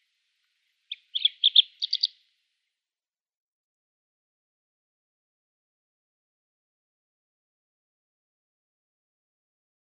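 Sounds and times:
Kordofan lark song phrase: 0.9 - 2.2.

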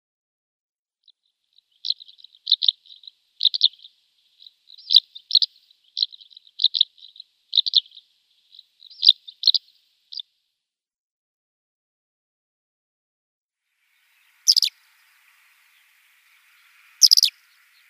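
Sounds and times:
Short-toed lark dry rippling chirps: 1.5 - 10.3, 13.8 - 17.8
Short-toed lark sharp brief high bursts: 16.9 - 17.8.

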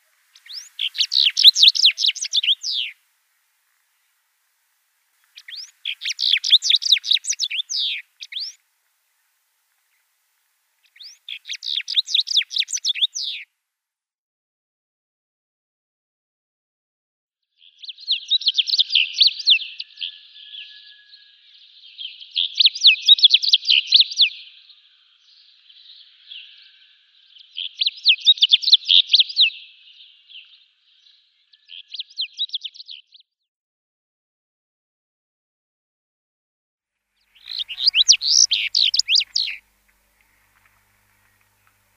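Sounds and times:
house bunting singing: 0.0 - 3.0, 5.2 - 10.2, 10.8 - 13.5, 17.8 - 33.1, 37.2 - 41.9.

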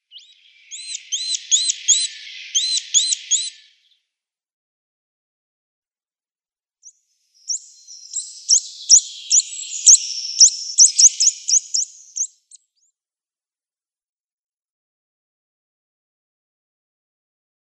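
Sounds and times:
Eurasian nuthatch giving clear whistled notes: 0.1 - 3.8, 7.5 - 12.4.

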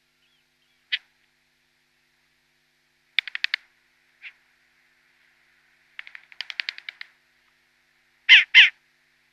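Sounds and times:
downy short-eared owl young giving harsh rattled rasping calls: 0.0 - 1.2, 3.1 - 4.4, 5.9 - 7.2, 8.3 - 8.8.

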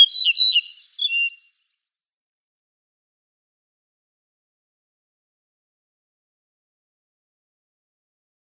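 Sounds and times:
Yellow-breasted bunting singing: 0.0 - 1.4.

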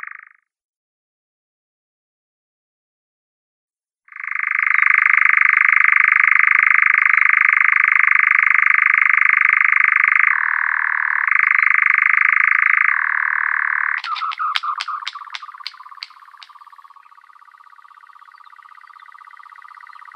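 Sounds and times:
male European nightjar churring in display: 4.1 - 20.1.

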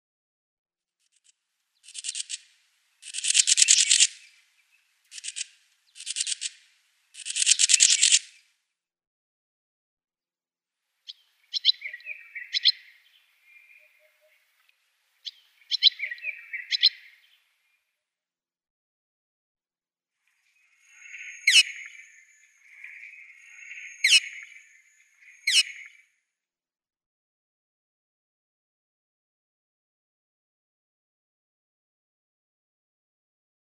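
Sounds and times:
Wire-tailed Swallow calls: 1.9 - 6.6, 11.1 - 14.6, 15.2 - 17.4, 20.4 - 26.1.

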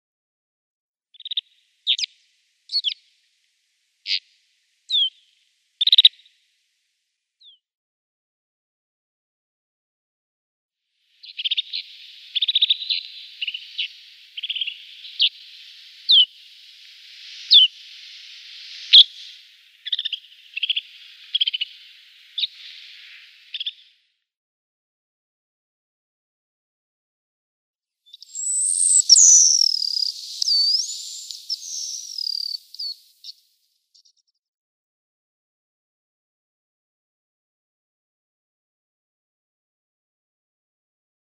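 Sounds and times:
Snow Bunting calls: 1.2 - 3.0, 4.1 - 4.3, 4.9 - 6.3, 11.2 - 23.9, 28.1 - 33.4.

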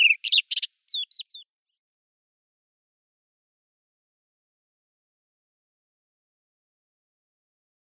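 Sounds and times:
crested lark chirps, rattles and whistles: 0.0 - 1.5.

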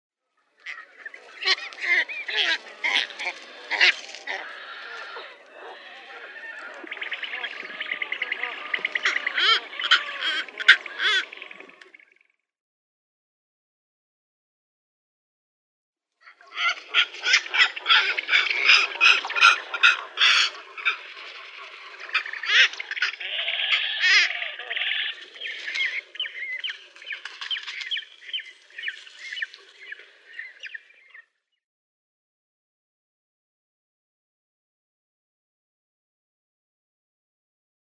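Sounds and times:
long-tailed cormorant calling: 0.6 - 12.2, 16.2 - 31.4.

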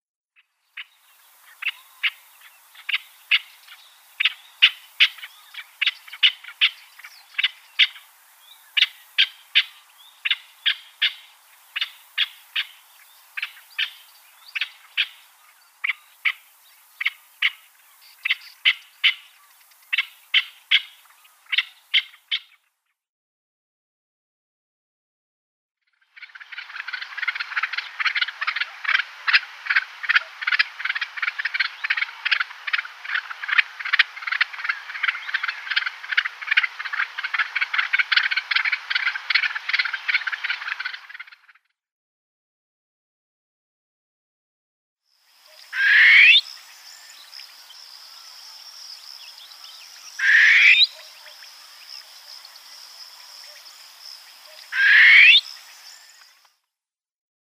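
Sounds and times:
Barbary Partridge male display: 0.8 - 22.6, 26.2 - 41.6, 45.5 - 47.1, 49.3 - 52.5, 54.4 - 56.3.

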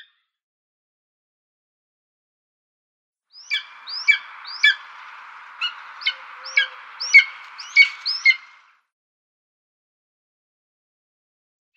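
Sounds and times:
spotted eagle uttering sharp downslurred yelps: 3.5 - 8.6
steady hiss: 3.5 - 8.8.

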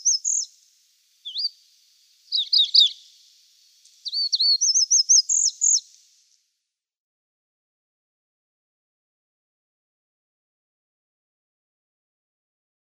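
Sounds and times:
chestnut bunting song: 0.0 - 6.1.

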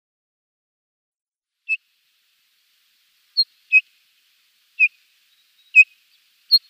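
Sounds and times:
Rufous-tailed Rock-Thrush whistled calls: 3.4 - 3.9, 4.8 - 6.6.

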